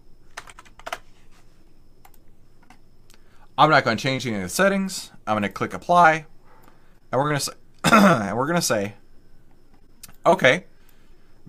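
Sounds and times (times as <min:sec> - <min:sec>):
typing on a computer keyboard: 0:00.3 - 0:01.0
speech: 0:03.6 - 0:06.3, 0:07.1 - 0:09.0, 0:10.3 - 0:10.7.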